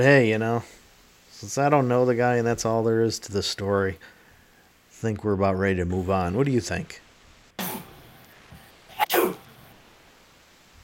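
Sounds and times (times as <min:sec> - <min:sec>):
speech: 0:00.0 - 0:00.8, 0:01.4 - 0:04.2, 0:05.0 - 0:07.0
quieter sneeze-like gasp: 0:07.6 - 0:08.0, 0:08.9 - 0:09.6
person sneezing: 0:07.6 - 0:08.2, 0:08.9 - 0:09.7.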